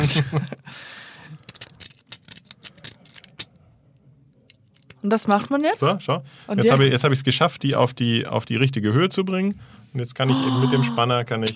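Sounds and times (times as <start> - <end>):
laughter: 0.0 - 0.7, 10.3 - 11.2
speech: 0.0 - 1.0, 5.0 - 11.5
Bogota lock pick raked over pins of a lightly tensioned lock: 1.4 - 3.6.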